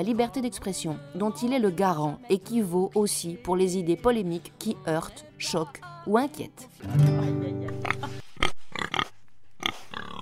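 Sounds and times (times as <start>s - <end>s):
speech: 0.0s - 7.5s
pig oinking and grunting: 7.8s - 10.2s.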